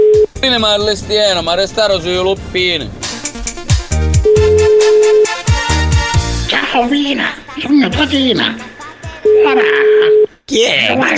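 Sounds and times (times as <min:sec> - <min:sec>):
telephone ringback tone on an unanswered outgoing call: 0:00.0 - 0:00.3, 0:04.2 - 0:05.5, 0:09.2 - 0:10.3
loud rhythmic music with heavy punchy drums: 0:00.2 - 0:06.5
speech: 0:00.4 - 0:03.0, 0:06.5 - 0:08.7, 0:09.4 - 0:11.1.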